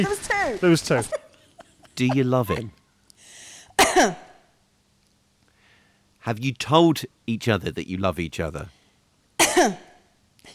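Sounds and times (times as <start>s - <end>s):
speech: 0.0s - 1.2s, 2.0s - 2.8s, 4.0s - 4.2s, 6.2s - 8.8s, 9.6s - 9.9s
soft breathy hiss: 0.0s - 7.4s, 8.6s - 10.5s
laughter: 0.8s - 2.7s
person coughing as a signalled answer: 3.8s - 4.4s, 9.4s - 10.5s.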